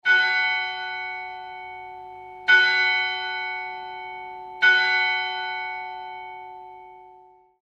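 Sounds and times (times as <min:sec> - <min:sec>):
carillon bells: 0:00.0 - 0:07.6.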